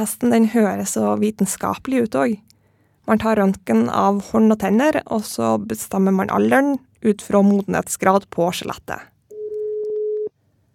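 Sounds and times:
speech: 0.0s - 2.5s, 3.1s - 9.1s
telephone ringback tone during outgoing call: 9.3s - 10.3s.

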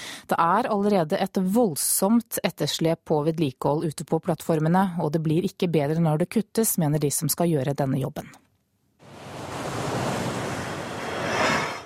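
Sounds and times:
speech: 0.3s - 8.4s
gusting wind at an offshore oil platform in the North Sea: 9.0s - 11.8s
ocean waves rushing at an offshore oil platform in the North Sea: 9.0s - 11.8s.

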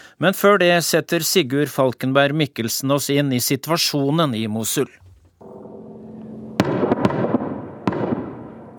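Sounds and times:
speech: 0.2s - 5.1s
steady low rumble of a helicopter: 5.4s - 6.8s
sharp loud blasts of a rocket fired from a helicopter: 5.4s - 8.7s.

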